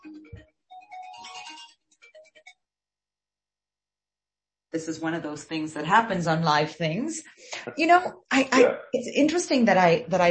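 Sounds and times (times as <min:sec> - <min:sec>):
phone melodic electronic ringtone: 0:00.0 - 0:02.4
speech: 0:04.7 - 0:10.3.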